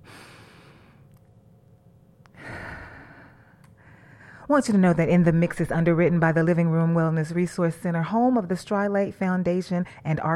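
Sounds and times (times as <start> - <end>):
deep breath in and out during a guided breathing exercise: 0.0 - 1.1, 2.3 - 4.5
speech: 4.5 - 10.3.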